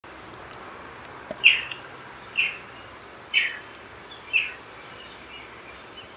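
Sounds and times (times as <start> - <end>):
socozinho calling: 0.4 - 6.1.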